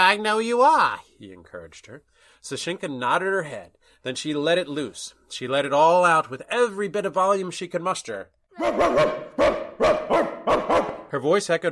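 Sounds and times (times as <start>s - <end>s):
speech: 0.0s - 11.7s
small dog barking loudly with high-pitched yaps: 8.6s - 11.0s.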